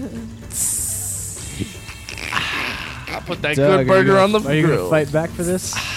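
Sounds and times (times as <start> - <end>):
speech: 0.0 - 0.8, 3.2 - 5.9
person imitating snake hissing: 0.4 - 5.0, 5.6 - 5.9.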